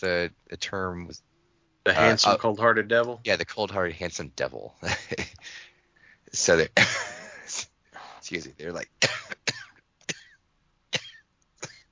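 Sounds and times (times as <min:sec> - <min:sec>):
speech: 0:00.0 - 0:05.7, 0:06.3 - 0:09.6
person coughing heavily: 0:06.8 - 0:07.6, 0:09.0 - 0:10.4, 0:11.0 - 0:11.8.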